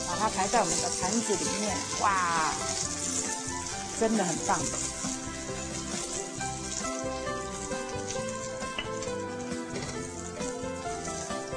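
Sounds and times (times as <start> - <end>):
Shanghai-style pan-fried meat buns sizzling in hot oil: 0.0 - 11.5
speech: 0.2 - 3.1, 4.0 - 5.0.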